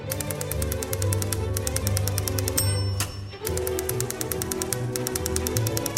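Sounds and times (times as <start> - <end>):
bright orchestral accompaniment: 0.0 - 5.9
rapid typewriter clacks: 0.0 - 5.9
brief bell-like ding: 2.6 - 3.6.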